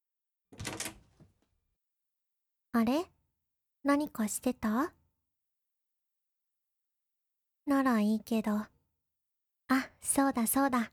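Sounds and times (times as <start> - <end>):
door opening: 0.6 - 1.4
speech: 2.8 - 3.1, 3.8 - 5.0, 7.7 - 8.7, 9.7 - 10.9.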